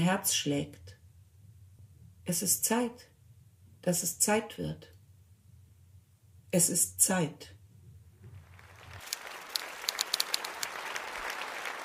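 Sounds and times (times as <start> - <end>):
speech: 0.0 - 1.0, 2.3 - 3.1, 3.8 - 4.9, 6.5 - 7.6
theatre audience applause after poetry reading: 8.4 - 11.8.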